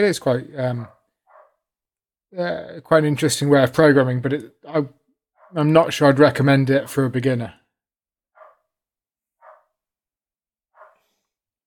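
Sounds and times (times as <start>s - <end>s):
speech: 0.0s - 1.0s, 2.3s - 7.6s
dog barking: 0.8s - 1.6s, 8.4s - 8.6s, 9.4s - 9.7s, 10.8s - 11.1s.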